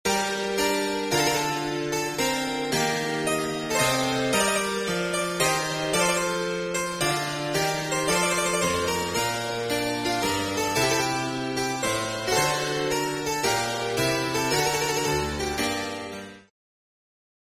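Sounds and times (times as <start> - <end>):
harpsichord chaconne: 0.1 - 16.5.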